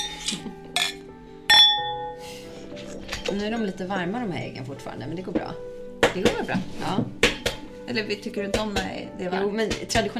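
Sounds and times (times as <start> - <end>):
glasses clinking together in a toast: 0.0 - 3.8
speech: 3.3 - 7.2, 7.9 - 10.1.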